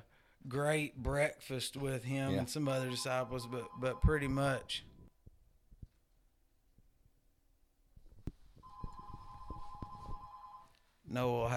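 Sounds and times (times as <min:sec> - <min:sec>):
speech: 0:00.4 - 0:04.9, 0:11.1 - 0:11.5
telephone ringing: 0:02.8 - 0:04.2, 0:08.6 - 0:10.8.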